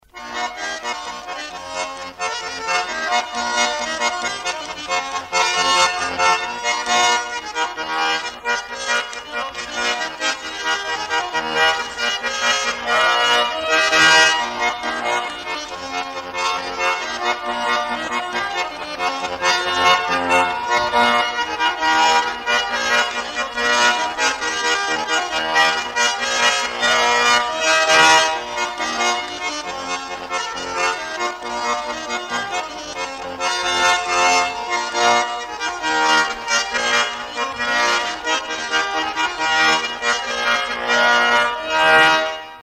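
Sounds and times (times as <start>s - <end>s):
folk polka on a lõõts accordion: 0.0s - 42.6s.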